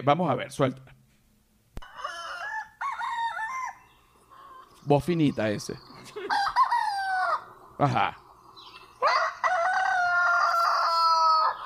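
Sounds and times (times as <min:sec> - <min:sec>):
speech: 0:00.0 - 0:01.0, 0:04.8 - 0:06.4, 0:07.8 - 0:08.2
rooster crowing: 0:01.8 - 0:04.8, 0:06.2 - 0:07.7, 0:08.8 - 0:11.6.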